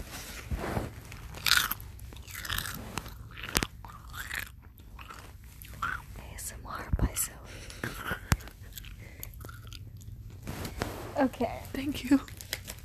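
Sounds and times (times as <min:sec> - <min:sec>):
chips being bitten and chewed: 0:00.0 - 0:06.1, 0:08.3 - 0:10.8, 0:12.1 - 0:12.8
speech: 0:11.3 - 0:12.3.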